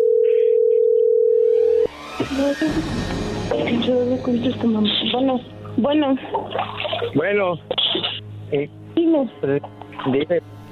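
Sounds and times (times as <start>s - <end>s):
telephone ringback tone while a number is dialed: 0.0s - 1.9s
speech: 2.4s - 7.8s, 8.5s - 10.6s.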